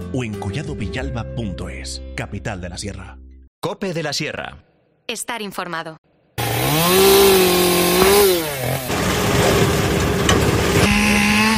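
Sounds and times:
speech: 0.1 - 6.1
chainsaws and brush cutters clearing and preparing forest land: 6.4 - 11.5.

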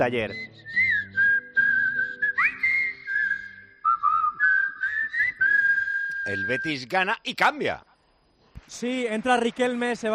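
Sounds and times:
speech: 0.0 - 0.7, 6.3 - 7.9, 8.7 - 10.1
person whistling a tune: 0.2 - 6.8.

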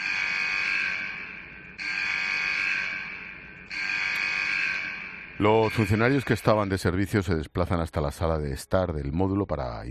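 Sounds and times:
harsh electronic prison alarm buzzing: 0.0 - 6.3
speech: 5.4 - 9.9.

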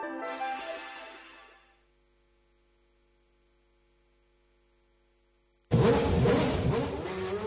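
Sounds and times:
faint electrical hum: 1.7 - 5.7
McLaren Formula 1 racing car engine roaring: 5.7 - 7.4.

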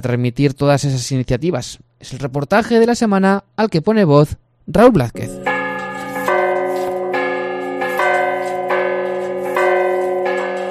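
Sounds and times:
speech: 0.0 - 5.5
church bells of a church in Salamanca Spain pealing at noon: 5.2 - 10.6.

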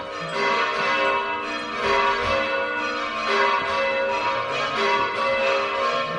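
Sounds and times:
church bells ringing in overlapping peals: 0.0 - 6.1.

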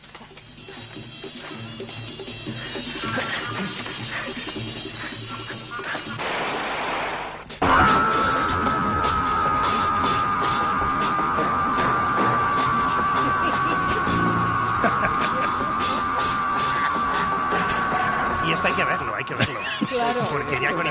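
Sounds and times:
busy noisy film soundtrack: 0.0 - 20.8
laughter: 2.4 - 6.2, 12.5 - 20.8
man screaming in a film: 7.6 - 19.5.

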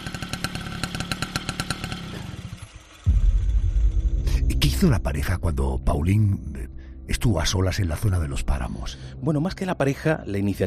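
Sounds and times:
motorcycle engine chugging and rumbling: 0.0 - 3.3
speech: 4.6 - 10.6.

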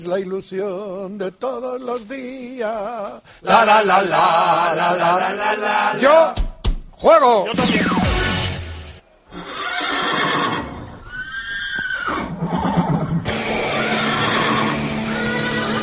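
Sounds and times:
speech: 0.0 - 6.4, 7.0 - 8.0
horse neighing: 9.3 - 15.8.

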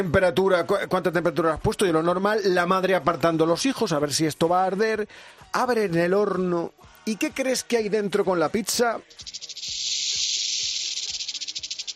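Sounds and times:
speech: 0.0 - 9.5
half-metre-long rattlesnake rattling inside an oven: 9.2 - 11.9.

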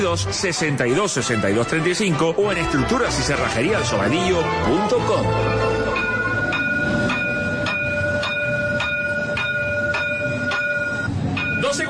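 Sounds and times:
speech: 0.0 - 6.1
tram electric motor whine: 3.6 - 11.8
tram wheels clacking over rail joints: 5.9 - 11.8.

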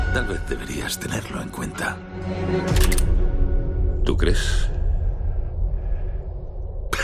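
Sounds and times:
speech: 0.2 - 3.2, 4.0 - 4.8
low rumbling: 3.4 - 7.0.

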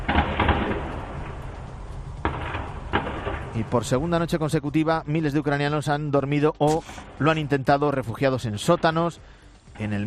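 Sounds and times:
gunfire in city streets: 0.0 - 1.0, 2.2 - 3.6
steady outdoor rumble: 0.0 - 4.5
speech: 3.6 - 10.0.

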